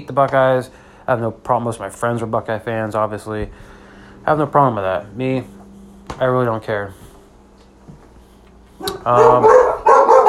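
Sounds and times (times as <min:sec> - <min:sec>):
speech: 0:00.0 - 0:07.0, 0:08.8 - 0:09.7
Basset Hound and Min Pin mix barking: 0:08.8 - 0:10.2.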